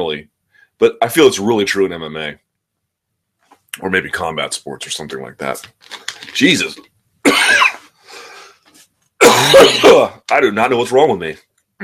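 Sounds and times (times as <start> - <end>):
speech: 0.0 - 2.4, 3.8 - 6.9, 9.4 - 11.8
person in a violent coughing fit: 7.3 - 7.9, 9.2 - 10.2
softer raspy breath: 8.0 - 8.7.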